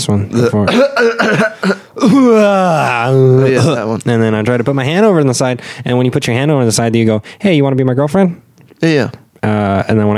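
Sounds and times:
speech: 0:00.0 - 0:10.1
person fake coughing and yawning while sitting down: 0:00.4 - 0:02.5.

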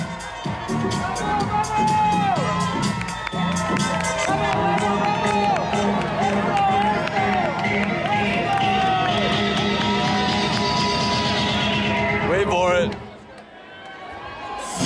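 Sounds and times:
dense street crowd cheering for a passing marathon runner: 0:00.0 - 0:14.8.

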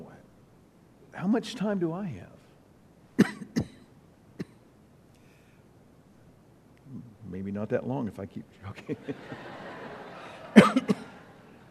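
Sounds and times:
speech: 0:01.2 - 0:02.4, 0:07.4 - 0:09.6
person coughing in an audience: 0:03.2 - 0:04.6, 0:10.5 - 0:11.1
laughter: 0:08.8 - 0:11.7.

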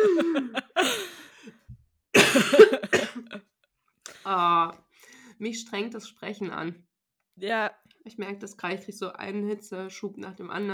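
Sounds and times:
laughter: 0:00.0 - 0:01.2
person coughing into the microphone: 0:00.0 - 0:01.4, 0:02.2 - 0:03.4
speech: 0:04.3 - 0:04.8, 0:05.4 - 0:10.7.

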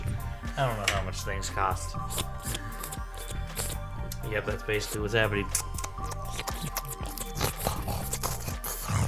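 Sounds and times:
speech: 0:00.6 - 0:03.3, 0:04.2 - 0:05.7
person slurping and smacking on scooped ice cream: 0:02.0 - 0:09.0
sharp little crunches while eating ice cream: 0:02.1 - 0:03.8, 0:04.8 - 0:08.9.

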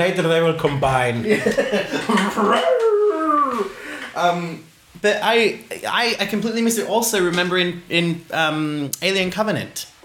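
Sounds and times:
speech: 0:00.0 - 0:02.9, 0:03.6 - 0:09.9
dog outside whining and howling: 0:02.4 - 0:03.7.

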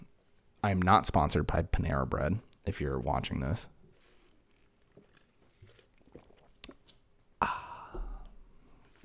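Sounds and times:
speech: 0:00.6 - 0:03.8
person sipping coffee: 0:03.9 - 0:09.0.

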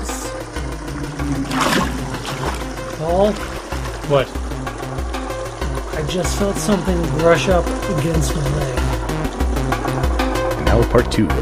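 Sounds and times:
water rushing and flowing: 0:00.0 - 0:11.2
speech: 0:03.0 - 0:04.4, 0:06.0 - 0:08.9, 0:10.8 - 0:11.4.

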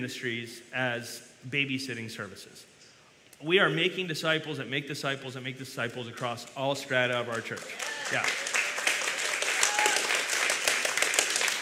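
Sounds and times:
speech: 0:00.0 - 0:02.7, 0:03.4 - 0:08.4
church audience clapping: 0:06.9 - 0:11.6.

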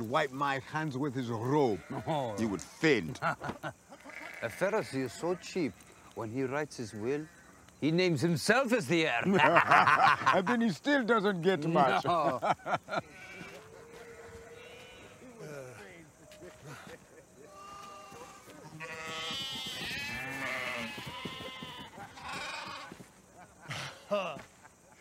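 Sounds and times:
speech: 0:00.1 - 0:03.8, 0:04.4 - 0:13.1
sheep bleating: 0:01.7 - 0:02.4, 0:03.9 - 0:05.4, 0:13.0 - 0:15.2, 0:17.5 - 0:23.0
laughter: 0:03.1 - 0:04.0, 0:09.0 - 0:10.8, 0:11.6 - 0:14.4, 0:15.2 - 0:18.8, 0:21.2 - 0:24.9.

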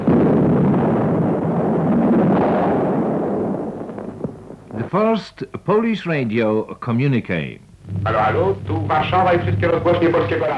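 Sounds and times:
battleship artillery fire shelling, archival recording: 0:00.0 - 0:04.8, 0:07.8 - 0:10.5
speech: 0:04.9 - 0:10.5.

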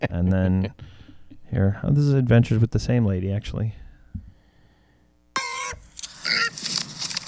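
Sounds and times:
speech: 0:00.0 - 0:03.8
pig squealing: 0:05.4 - 0:06.7.

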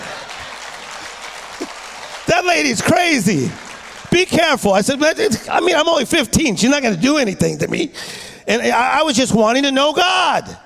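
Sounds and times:
audience applause: 0:00.0 - 0:05.3
speech: 0:02.4 - 0:10.6.

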